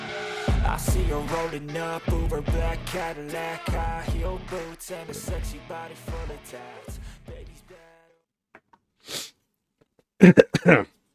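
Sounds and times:
speech: 0.6s - 7.3s, 10.2s - 11.0s
sharp breathy intake: 9.0s - 9.4s
harsh coughs: 10.2s - 11.0s.

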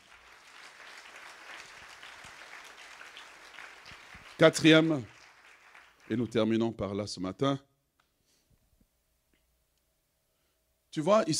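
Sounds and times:
church congregation clapping during a sermon: 0.0s - 6.6s
speech: 4.4s - 5.1s, 6.1s - 7.7s, 10.9s - 11.3s.

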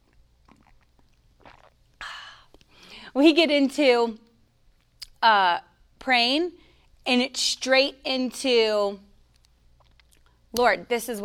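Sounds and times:
person sipping and slurping a drink: 0.1s - 2.8s, 9.4s - 10.4s
speech: 3.1s - 4.2s, 5.2s - 9.1s, 10.5s - 11.2s.

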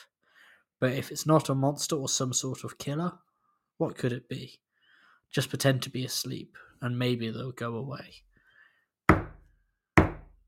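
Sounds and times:
speech: 0.8s - 4.7s, 5.3s - 8.3s
firm heavy knocks: 9.1s - 9.4s, 10.0s - 10.3s.

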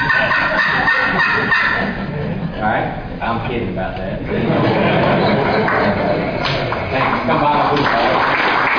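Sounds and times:
turkey call yelping like a hen: 0.0s - 2.1s
laughter: 0.0s - 2.8s, 4.2s - 8.7s
speech: 3.3s - 6.0s.

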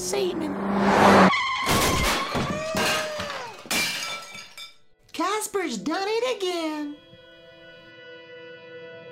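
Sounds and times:
car tires screeching in a skid: 0.0s - 3.1s
speech: 0.1s - 1.0s, 5.6s - 7.1s
car crash: 0.6s - 4.7s
crash debris scattering: 1.6s - 4.9s
glass shattering: 1.6s - 4.9s.

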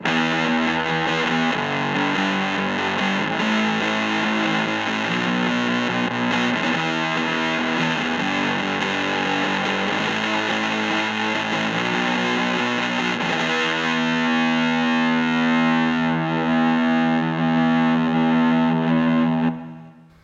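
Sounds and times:
fuzzy garage-toned rhythm guitar through a pep box playing power chords with room reverb: 0.0s - 20.2s.

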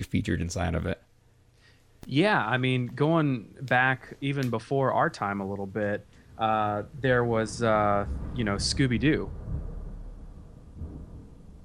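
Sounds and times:
speech: 0.1s - 1.1s, 2.0s - 9.4s
low continuous rumble of thunder: 6.4s - 11.6s.

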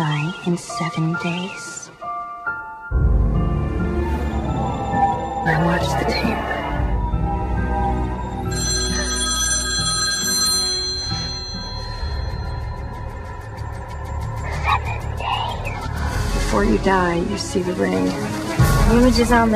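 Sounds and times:
low rumbling music: 0.0s - 19.5s
speech: 0.4s - 1.8s, 5.5s - 6.5s, 16.6s - 19.5s
telephone ringing with electronic trill: 8.4s - 13.8s.

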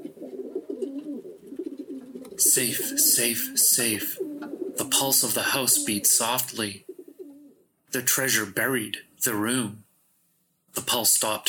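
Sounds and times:
wood pigeon cooing: 0.0s - 7.7s
speech: 2.4s - 4.2s, 4.9s - 6.9s, 7.9s - 9.8s, 10.8s - 11.4s.

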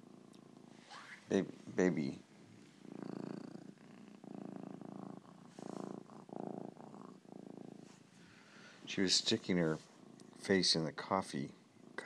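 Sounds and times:
cat purring softly: 0.0s - 12.0s
speech: 1.3s - 2.3s, 9.0s - 11.6s.

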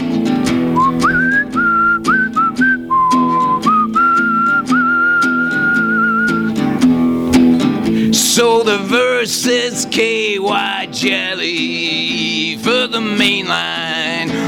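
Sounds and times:
instrumental backing: 0.0s - 14.4s
whistled melody: 0.8s - 7.6s
speech: 8.4s - 14.3s.

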